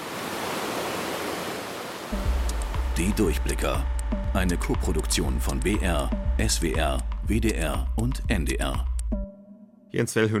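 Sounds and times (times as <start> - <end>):
water rushing through opened sluice gates: 0.0 - 2.2
speech: 3.0 - 8.9, 9.9 - 10.3.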